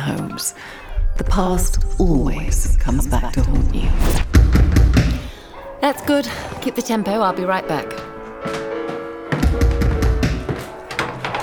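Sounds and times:
steady music: 0.0 - 11.4
speech: 0.1 - 4.6, 5.8 - 8.1
knocks on a door: 9.3 - 10.7.

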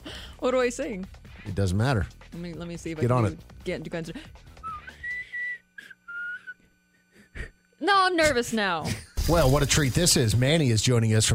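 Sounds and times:
speech: 0.4 - 4.5, 7.8 - 11.3
person whistling a short wavering melody by sucking air inward: 4.6 - 6.6.

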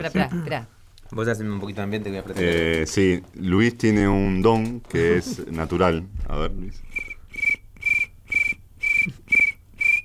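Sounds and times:
speech: 0.0 - 7.1
person imitating a cricket with whistled chirps: 7.0 - 10.0.

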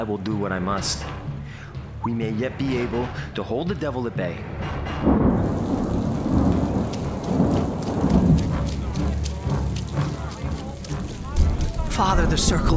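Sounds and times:
speech: 0.0 - 1.3, 2.0 - 5.3, 12.0 - 12.7
deep rumbling: 4.3 - 12.7
heavy rain downpour outside a church: 5.0 - 12.7.

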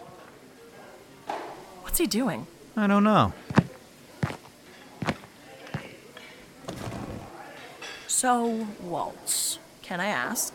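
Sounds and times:
faint hum of activity: 0.0 - 10.5
speech: 2.0 - 3.4, 8.2 - 10.5
footsteps walking to a fast food counter: 3.4 - 6.0.

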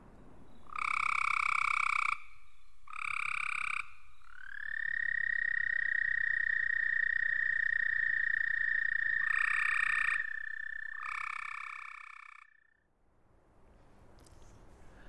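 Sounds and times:
American toad giving a high musical trill: 0.6 - 2.3, 2.9 - 12.8
shorter buzzy frog calls: 0.6 - 12.8.

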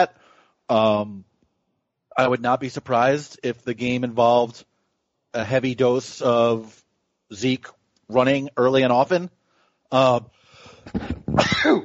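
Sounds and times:
speech: 0.0 - 1.3, 2.2 - 4.7, 5.3 - 11.8
single loud sneeze with voiced intake: 11.2 - 11.8.

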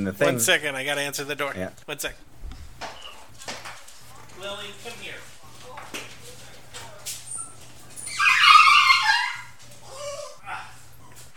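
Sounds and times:
speech: 0.0 - 2.3
dog whimpering and yelping: 7.3 - 11.3.

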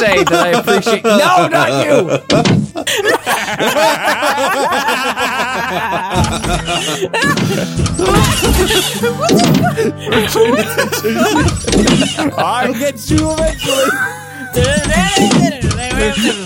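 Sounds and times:
snickering laughter: 0.0 - 13.0, 13.6 - 14.6
speech: 0.0 - 16.4
door thudding and banging: 2.3 - 2.8, 6.1 - 9.8, 11.2 - 12.4, 13.1 - 13.8, 14.5 - 16.4.

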